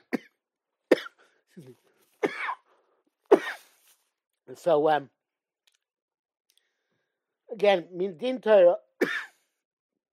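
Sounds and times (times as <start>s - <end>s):
cough: 0.0s - 1.3s, 2.2s - 2.7s, 3.3s - 3.8s, 9.0s - 9.5s
speech: 1.6s - 2.0s, 4.5s - 5.2s, 7.6s - 9.2s.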